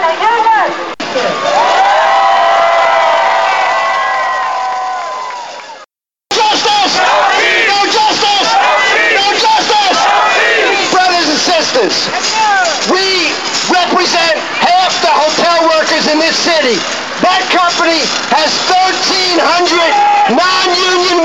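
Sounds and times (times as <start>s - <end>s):
crowd of thousands giving a long sustained shout: 0.2s - 21.2s
crowd of thousands marching and chanting: 6.3s - 11.4s.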